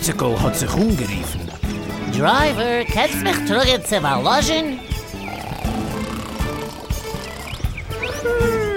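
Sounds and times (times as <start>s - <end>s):
speech: 0.0s - 4.9s
rough noises: 0.0s - 8.6s
loud horse-like snoring from a sleeping coach driver: 5.1s - 7.8s.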